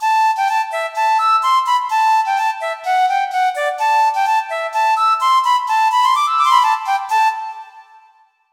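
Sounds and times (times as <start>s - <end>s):
synthesized Irish flute: 0.0s - 8.4s.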